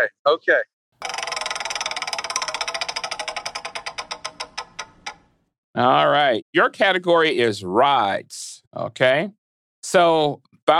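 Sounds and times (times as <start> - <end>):
speech: 0.0 - 0.7, 5.8 - 10.7
game prize wheel spinning and clicking: 1.0 - 5.4.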